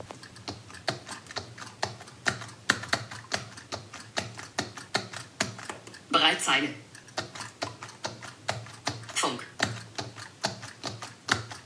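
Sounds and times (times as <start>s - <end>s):
typing on an external keyboard connected to an iPhone: 0.0s - 6.0s, 7.0s - 11.6s
speech: 6.3s - 6.8s.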